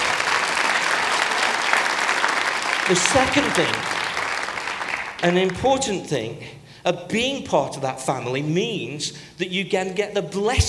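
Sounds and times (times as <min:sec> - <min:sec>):
audience clapping hands in praise: 0:00.0 - 0:05.6
speech: 0:02.9 - 0:04.0, 0:05.2 - 0:10.6.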